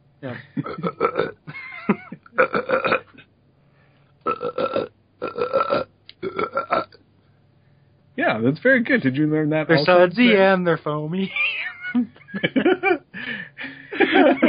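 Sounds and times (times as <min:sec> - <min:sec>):
speech: 0:00.2 - 0:02.0, 0:08.4 - 0:11.6
person burping: 0:00.3 - 0:01.6, 0:02.2 - 0:03.2, 0:04.2 - 0:07.0
laughter: 0:11.2 - 0:14.4.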